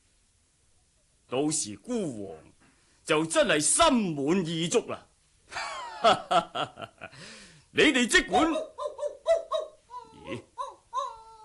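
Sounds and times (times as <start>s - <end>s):
speech: 1.3s - 2.5s, 3.1s - 8.7s, 10.3s - 10.5s
laughter: 5.5s - 7.2s
dog barking in short high-pitched yelps: 8.3s - 9.8s.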